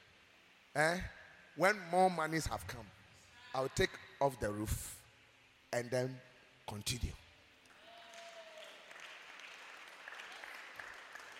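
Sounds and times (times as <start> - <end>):
speech: 0.8 - 3.0, 3.6 - 5.0, 5.7 - 7.2
audience clapping: 7.7 - 11.3.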